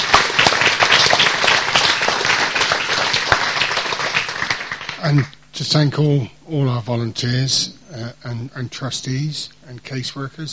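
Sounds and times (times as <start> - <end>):
room full of people applauding: 0.0 - 5.3
speech: 5.0 - 10.5.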